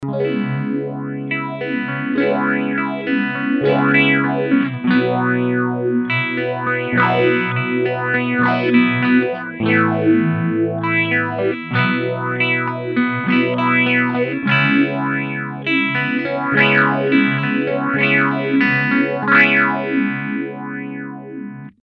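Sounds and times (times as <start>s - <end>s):
clean phaser effect at rate 13 and full depth: 0.0s - 21.8s.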